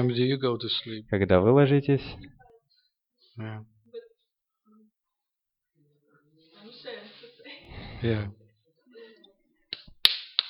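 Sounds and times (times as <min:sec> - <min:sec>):
speech: 0:00.0 - 0:02.4, 0:03.4 - 0:03.7, 0:08.0 - 0:08.4
faint murmur of voice: 0:02.1 - 0:09.7
sharp slaps: 0:09.8 - 0:10.4.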